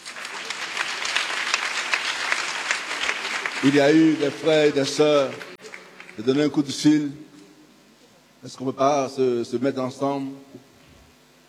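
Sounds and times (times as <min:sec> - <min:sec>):
church congregation applauding: 0:00.0 - 0:07.0
speech: 0:03.6 - 0:05.5, 0:06.2 - 0:07.3, 0:08.4 - 0:10.7.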